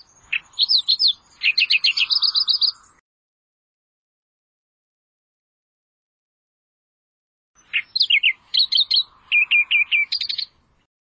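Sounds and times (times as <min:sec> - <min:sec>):
Australian reed warbler singing rapid high-pitched phrases: 0:00.0 - 0:03.0, 0:07.6 - 0:10.9.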